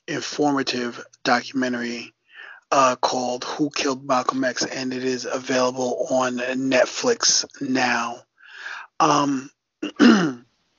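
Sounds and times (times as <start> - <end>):
speech: 0.1 - 8.3, 9.0 - 10.4
person clearing throat: 9.2 - 10.4.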